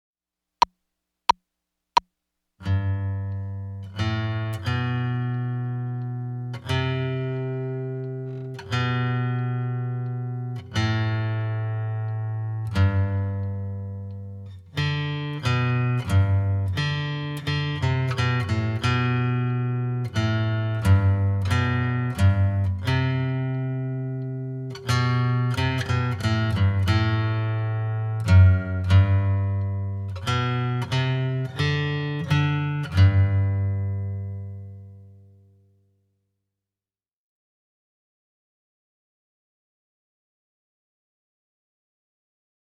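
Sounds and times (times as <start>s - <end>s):
second guitar: 2.6s - 35.9s.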